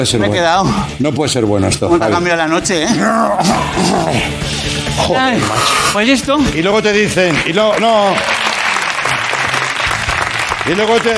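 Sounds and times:
speech: 0.0s - 8.4s, 10.6s - 11.1s
audience applause: 7.2s - 11.1s.

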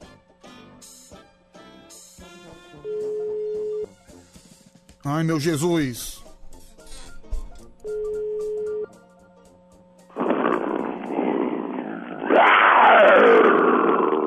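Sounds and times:
speech: 5.0s - 6.2s
engine roar: 10.2s - 14.2s.

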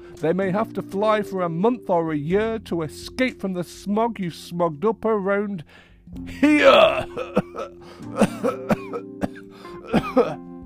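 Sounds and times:
speech: 0.2s - 9.2s, 9.8s - 10.5s
harsh throaty coughing: 6.3s - 10.4s.

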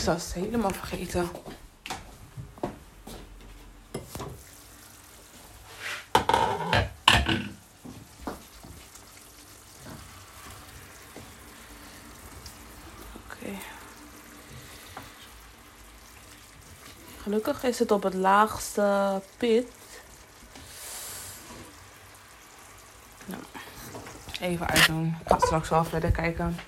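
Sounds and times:
speech: 0.0s - 1.6s, 17.3s - 19.8s, 24.4s - 26.6s
food frying with a sizzling hiss: 3.9s - 26.4s
pans and utensils clanking and clattering: 5.8s - 7.6s.

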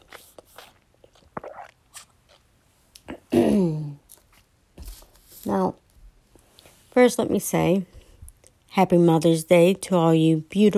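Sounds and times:
person sipping a drink: 0.0s - 3.1s
speech: 7.0s - 7.9s, 8.8s - 10.7s.

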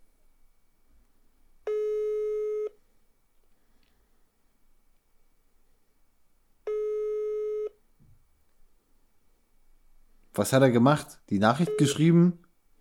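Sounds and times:
telephone line tone during an outgoing call: 1.7s - 2.8s, 6.7s - 7.8s, 11.6s - 12.1s
speech: 10.4s - 12.4s.

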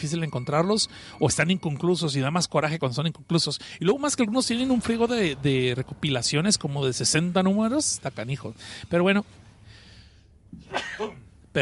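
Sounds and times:
speech: 0.0s - 9.4s, 10.5s - 11.6s
person sneezing: 10.6s - 11.3s.

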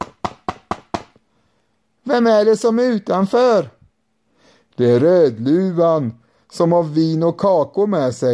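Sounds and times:
knocking on a door: 0.0s - 1.2s
speech: 2.1s - 3.8s, 4.8s - 8.3s.

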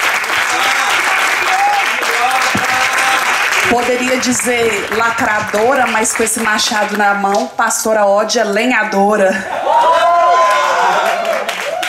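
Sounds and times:
crowd applause for a speaker: 0.0s - 7.2s, 9.5s - 11.8s
speech: 3.7s - 10.1s.

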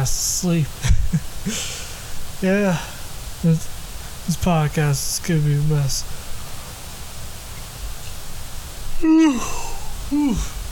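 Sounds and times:
speech: 0.0s - 1.8s, 2.4s - 6.2s, 9.0s - 10.6s
steady hiss: 0.0s - 10.6s
person yawning aloud: 9.0s - 10.6s.

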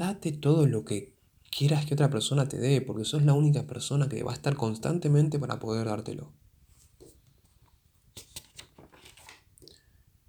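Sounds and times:
speech: 0.0s - 6.4s
paper page being turned: 8.1s - 9.5s.

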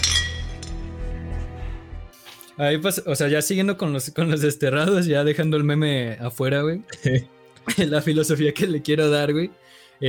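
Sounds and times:
glasses clinking in a toast: 0.0s - 0.8s
speech: 2.6s - 10.0s
laughter: 6.9s - 7.9s.

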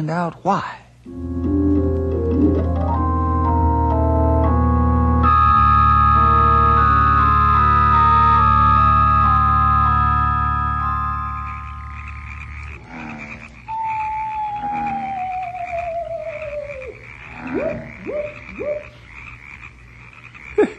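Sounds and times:
speech: 0.0s - 1.4s
humming nighttime background: 0.0s - 20.7s
frogs croaking at night: 5.1s - 20.7s.

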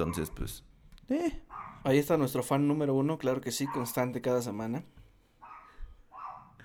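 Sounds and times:
speech: 0.0s - 5.0s
dog barking: 1.5s - 1.9s, 3.6s - 4.3s, 5.4s - 6.6s.

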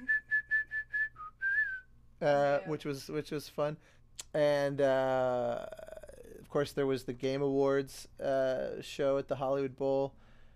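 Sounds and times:
person whistling during a live film-score concert: 0.0s - 2.0s
speech: 2.2s - 5.9s, 6.5s - 10.2s.

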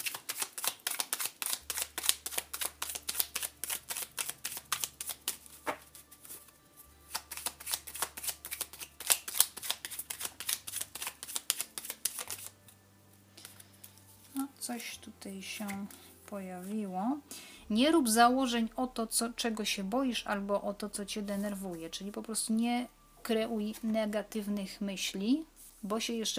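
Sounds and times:
tarot cards being shuffled and drawn: 0.0s - 12.8s, 13.4s - 14.4s, 15.6s - 16.7s
speech: 14.7s - 26.3s.

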